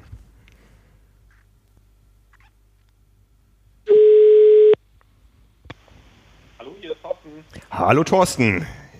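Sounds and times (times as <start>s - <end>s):
telephone ringing tone: 3.9s - 4.8s
speech: 7.7s - 8.8s.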